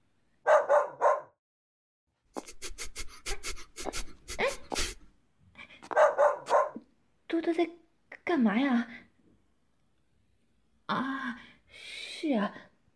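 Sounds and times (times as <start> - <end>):
male dog barking: 0.4 - 1.4, 5.9 - 6.9
speech: 7.4 - 9.0, 12.3 - 12.7.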